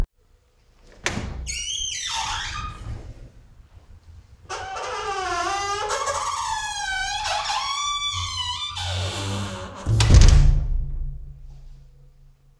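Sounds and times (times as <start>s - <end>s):
door of a music cellar: 0.8s - 3.3s, 4.5s - 11.0s.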